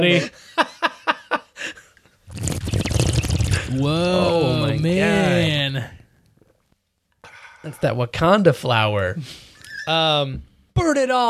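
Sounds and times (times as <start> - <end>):
speech: 0.0 - 0.7, 3.7 - 5.9, 7.6 - 11.2
air blown through a glass of water imitating a bong: 2.3 - 3.8
rhythmic vocal bloops: 2.3 - 5.6.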